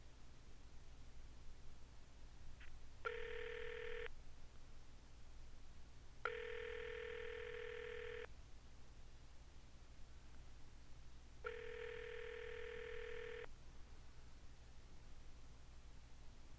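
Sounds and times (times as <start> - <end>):
low hiss: 0.0 - 16.5
phone ringback tone from an app call: 3.1 - 4.1, 6.3 - 8.3, 11.4 - 13.5.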